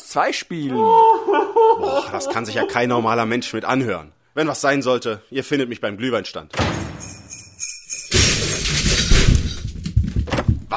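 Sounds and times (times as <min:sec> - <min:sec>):
speech: 0:00.1 - 0:06.8
laughter: 0:00.7 - 0:03.2
loud crash of a heavy fall from a roof: 0:08.1 - 0:09.7
debris rattling and clattering: 0:08.1 - 0:10.6.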